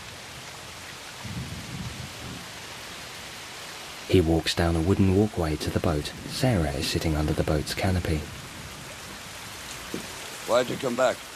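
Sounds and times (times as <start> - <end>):
heavy rain pouring down at night: 0.0 - 11.3
speech: 4.1 - 8.4, 9.9 - 11.3.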